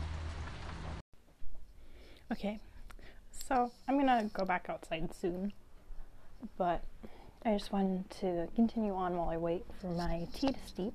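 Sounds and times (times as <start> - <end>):
heavy rain: 0.0 - 1.0
speech: 2.3 - 2.7, 3.5 - 5.6, 6.4 - 10.9.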